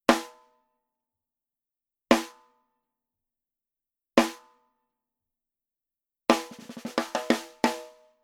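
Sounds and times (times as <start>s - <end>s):
dry snare drum rim shot: 6.3s - 8.0s.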